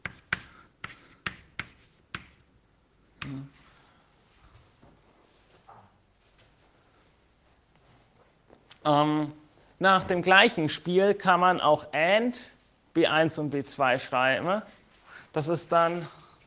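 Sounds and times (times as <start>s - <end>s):
chalk or marker strokes on a board during a lecture: 0.0s - 2.5s
speech: 8.8s - 14.8s, 15.4s - 16.2s.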